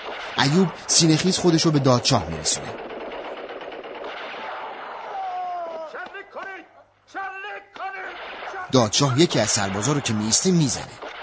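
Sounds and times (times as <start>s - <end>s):
dense continuous gunfire in a battle scene: 0.0s - 6.2s, 8.0s - 11.2s
speech: 0.4s - 2.9s, 8.7s - 11.0s
people shouting in a battle scene: 5.0s - 6.7s.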